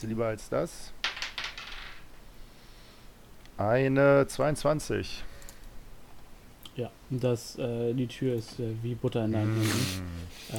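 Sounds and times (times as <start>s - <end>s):
speech: 0.0s - 1.0s, 3.6s - 5.3s, 6.8s - 10.5s
dice rolled during a tabletop role-playing game: 1.0s - 2.1s.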